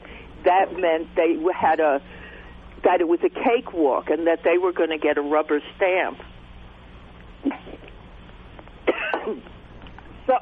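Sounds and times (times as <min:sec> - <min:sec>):
speech: 0:00.5 - 0:02.2, 0:02.8 - 0:06.3, 0:09.3 - 0:09.5
person coughing over a phone-quality line: 0:08.9 - 0:09.5.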